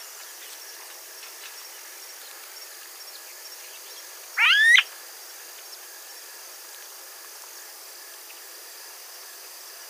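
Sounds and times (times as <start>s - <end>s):
smooth-billed ani calling in Brevard County Florida: 4.4s - 4.9s.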